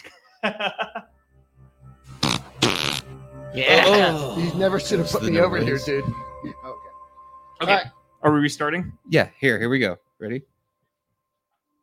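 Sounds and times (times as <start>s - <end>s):
laughter: 0.0s - 1.1s
speech: 0.4s - 0.8s, 3.6s - 6.2s, 7.6s - 10.5s
comic fart sound effect from a soundboard: 2.1s - 3.2s.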